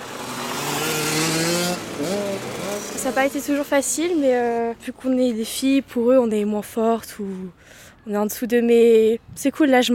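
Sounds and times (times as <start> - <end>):
motorcycle engine revving at a motoball match: 0.0 - 3.8
speech: 3.0 - 9.9.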